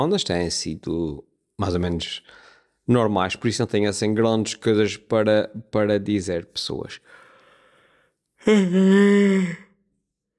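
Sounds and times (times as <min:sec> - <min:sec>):
speech: 0:00.0 - 0:07.2, 0:08.4 - 0:09.7
person yawning: 0:08.4 - 0:09.8.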